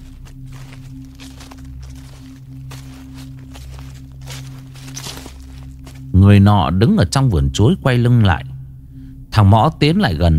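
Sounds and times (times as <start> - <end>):
footsteps crunching and rustling over dry fallen banana leaves in a banana garden: 0.0 - 6.2
speech: 6.2 - 8.5, 9.4 - 10.3.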